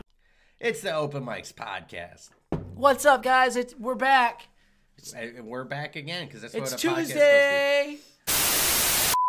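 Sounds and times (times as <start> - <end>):
speech: 0.6 - 8.4
static hiss: 8.3 - 9.2.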